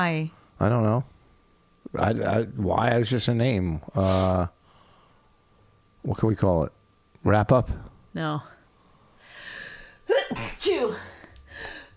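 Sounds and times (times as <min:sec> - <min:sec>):
speech: 0:00.0 - 0:01.1, 0:01.9 - 0:04.6, 0:06.0 - 0:08.5, 0:10.2 - 0:11.1
loud sneeze: 0:10.1 - 0:10.8.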